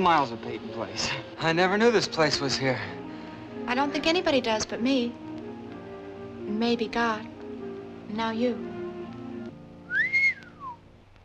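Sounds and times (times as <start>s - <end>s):
speech: 0.0s - 3.0s, 3.7s - 5.2s, 6.5s - 7.3s, 8.1s - 8.7s
person whistling a rising-and-falling whistle: 9.9s - 10.8s.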